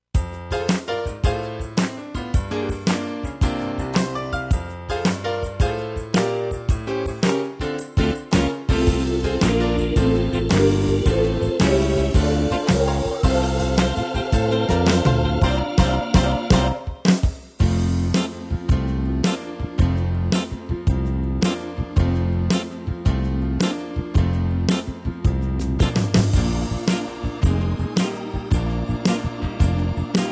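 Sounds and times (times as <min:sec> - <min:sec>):
gospel swing music: 0:00.2 - 0:30.2.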